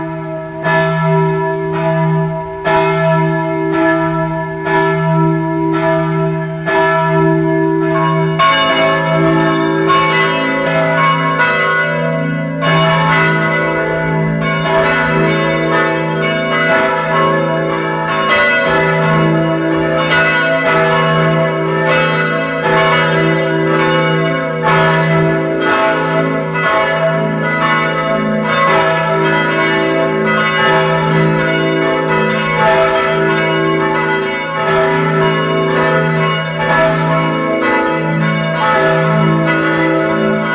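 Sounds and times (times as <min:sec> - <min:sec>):
several church bells ringing at noon: 0:00.0 - 0:40.5.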